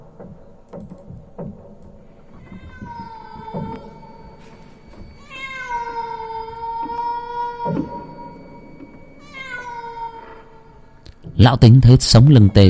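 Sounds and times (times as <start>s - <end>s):
cat meowing eerily outside on a porch at night: 2.4s - 10.9s
speech: 11.4s - 12.6s.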